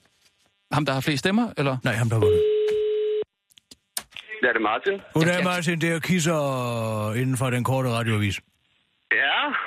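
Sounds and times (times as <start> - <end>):
speech: 0.8 - 2.5, 4.4 - 8.5
telephone ringing tone through the line while placing a call: 2.2 - 3.2.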